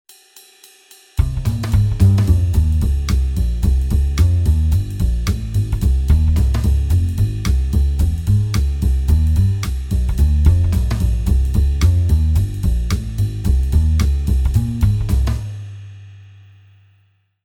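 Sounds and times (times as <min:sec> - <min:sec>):
jazz backing on guitar: 0:01.2 - 0:15.5.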